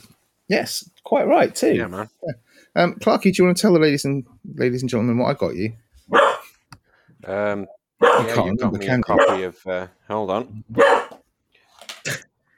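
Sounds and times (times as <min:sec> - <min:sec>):
speech: 0:00.0 - 0:06.3, 0:07.2 - 0:11.1
dog barking in a conservatory: 0:06.1 - 0:06.5, 0:08.0 - 0:08.4, 0:09.1 - 0:09.4, 0:10.8 - 0:11.2.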